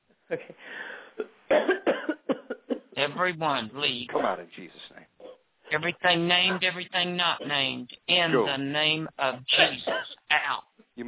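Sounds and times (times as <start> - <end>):
speech: 0.3 - 1.8, 3.0 - 4.9, 5.7 - 11.0
deep coughing during a prayer deliverance session: 0.3 - 3.0, 4.1 - 4.5, 9.5 - 10.2.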